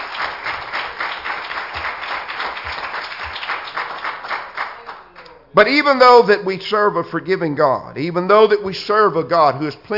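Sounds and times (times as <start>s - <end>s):
audience applauding: 0.0s - 5.2s
speech: 5.6s - 9.9s.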